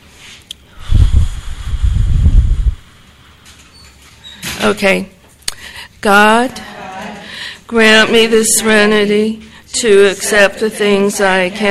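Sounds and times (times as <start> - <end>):
low rumbling breath noise against the microphone: 0.6 - 3.4
deep breaths taken before a group prayer at a meeting: 0.6 - 3.7, 5.5 - 6.0, 6.6 - 7.7
speech: 4.6 - 5.2, 6.0 - 6.7, 7.7 - 11.6.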